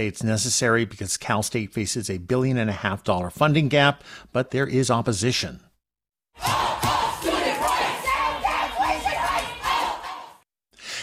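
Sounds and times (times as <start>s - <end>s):
speech: 0.0s - 5.7s
large crowd of protesting students and faculty chanting and shouting: 6.4s - 10.4s.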